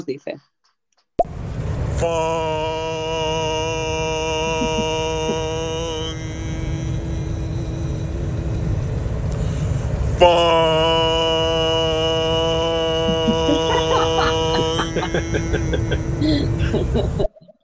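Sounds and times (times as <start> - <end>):
speech: 0.0 - 0.5, 2.0 - 3.0, 10.2 - 10.8
constant low ship engine rumble: 1.3 - 17.6
ship's horn blasts announcing departure: 2.0 - 16.8
laughter: 4.3 - 5.8, 12.9 - 17.4.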